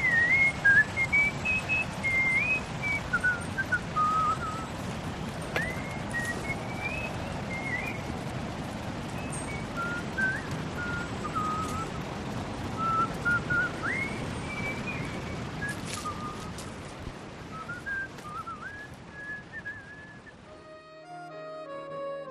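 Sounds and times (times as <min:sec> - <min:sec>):
man whistling a wandering melody while walking a dog in a park: 0:00.0 - 0:04.7, 0:05.5 - 0:08.1, 0:09.2 - 0:12.0, 0:12.8 - 0:16.6, 0:17.5 - 0:20.8
steady low rumble of wind: 0:00.0 - 0:22.3.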